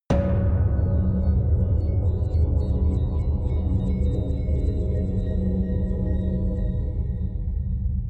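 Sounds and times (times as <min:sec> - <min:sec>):
explosion impact hits: 0:00.1 - 0:04.6
long atmospheric artifacts: 0:00.1 - 0:08.0.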